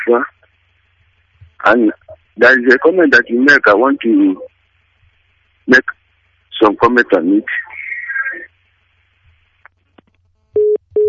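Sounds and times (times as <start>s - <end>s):
speech: 0.0s - 0.4s, 1.6s - 4.5s, 5.7s - 7.8s
telephone busy tone after a dropped Skype call: 10.6s - 11.0s.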